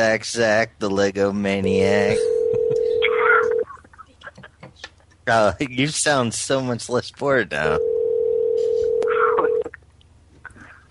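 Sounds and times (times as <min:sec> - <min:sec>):
speech: 0:00.1 - 0:02.8, 0:05.3 - 0:07.9
telephone dial tone: 0:02.4 - 0:03.6, 0:07.8 - 0:09.6.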